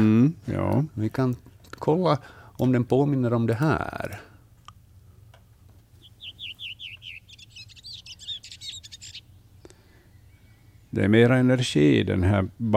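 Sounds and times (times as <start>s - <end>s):
speech: 0.0s - 4.3s, 10.9s - 12.7s
low steady hum: 0.0s - 12.7s
redwing singing: 5.9s - 12.0s.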